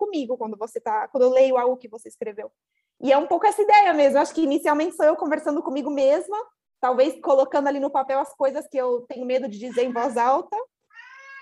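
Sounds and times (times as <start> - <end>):
speech: 0.1 - 10.7
cat meowing: 10.9 - 11.3.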